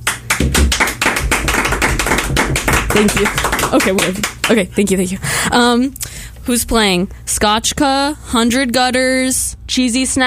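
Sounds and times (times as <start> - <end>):
people clapping: 0.0 - 4.9
speech: 3.0 - 10.2.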